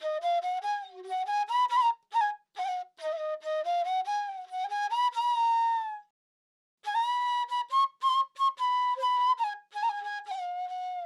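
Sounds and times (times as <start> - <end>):
piccolo flute melody in G minor, dancehall style: 0.0 - 6.1, 6.8 - 11.0.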